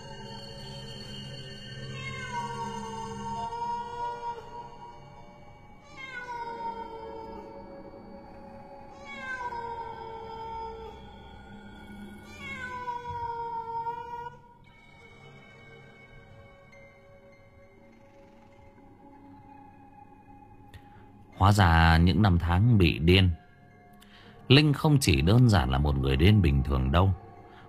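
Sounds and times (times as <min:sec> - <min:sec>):
cat meowing mournfully: 0:01.8 - 0:05.0, 0:05.7 - 0:07.8, 0:08.9 - 0:11.2, 0:12.2 - 0:14.6
speech: 0:21.4 - 0:23.4, 0:24.5 - 0:27.2.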